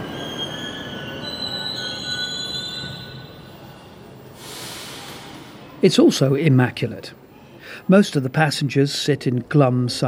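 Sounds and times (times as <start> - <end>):
metro train arriving with rumbling: 0.0 - 5.8
brief hiss of metro train: 4.3 - 5.8
speech: 5.8 - 7.2, 7.9 - 10.0.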